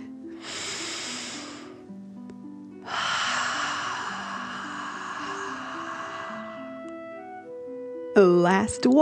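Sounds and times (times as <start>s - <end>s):
deep breath drawn in during a breathing exercise: 0.0s - 1.8s, 2.8s - 7.2s
forceful exhale through the mouth during a breathing exercise: 0.4s - 1.8s, 2.9s - 6.9s
soft low tonal drone: 2.9s - 8.4s.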